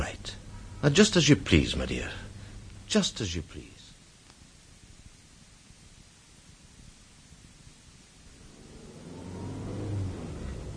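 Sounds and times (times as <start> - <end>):
speech: 0.8 - 2.3, 2.9 - 3.8
car engine humming at a low pitch: 8.3 - 10.7.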